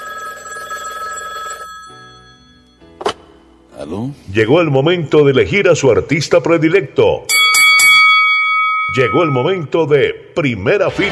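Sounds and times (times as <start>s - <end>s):
telephone bell ringing: 0.0s - 2.8s, 7.3s - 9.4s
speech: 3.8s - 7.4s, 9.0s - 11.1s.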